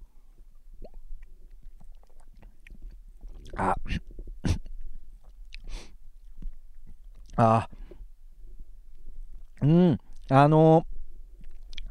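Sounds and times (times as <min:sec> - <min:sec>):
steady low hum: 0:00.0 - 0:11.8
person sipping and swallowing a sweet bitter-tasting drink: 0:00.3 - 0:08.0, 0:11.4 - 0:11.8
speech: 0:03.6 - 0:04.1, 0:07.4 - 0:07.8, 0:09.6 - 0:10.9.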